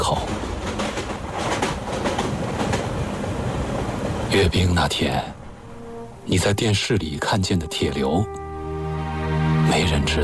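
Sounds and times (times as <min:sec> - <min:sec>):
train wheels clacking on rails: 0:00.0 - 0:04.8
train rumbling along the rails: 0:00.0 - 0:08.4
speech: 0:04.3 - 0:05.4, 0:06.3 - 0:08.4, 0:09.7 - 0:10.2.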